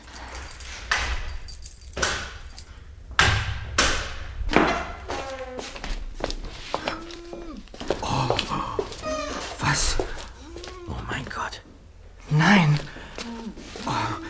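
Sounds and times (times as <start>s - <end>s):
keys jangling and clicking in a lock: 0.0s - 2.8s
door thudding as it is worked open: 0.9s - 6.2s
hushed voices murmuring: 6.7s - 14.2s.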